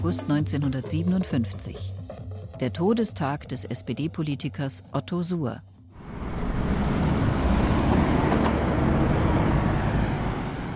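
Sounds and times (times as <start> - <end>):
speech: 0.0 - 5.7
traffic rolling past on a four-lane city road: 6.0 - 10.7.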